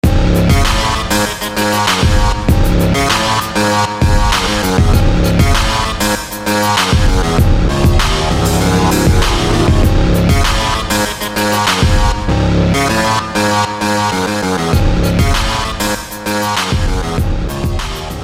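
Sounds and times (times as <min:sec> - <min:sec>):
gritty synth: 0:00.0 - 0:18.2.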